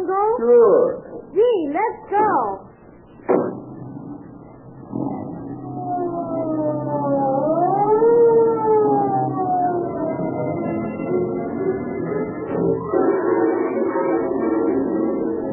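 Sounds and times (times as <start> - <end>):
speech: 0.4 - 2.6
sharp thumps: 3.2 - 6.5
police car siren wailing: 4.6 - 15.5.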